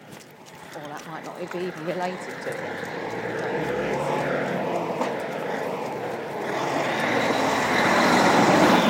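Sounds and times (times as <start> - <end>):
lorry engine roar driving past: 0.5 - 8.8
speech: 0.8 - 3.7.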